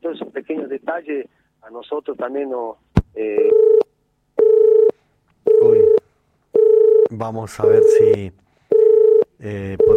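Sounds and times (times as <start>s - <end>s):
speech: 0.9s - 3.9s, 7.1s - 8.4s, 9.4s - 9.9s
mid-pitched telephone line beeps while a call is being reconnected: 3.4s - 6.0s, 6.6s - 8.1s, 8.7s - 9.9s.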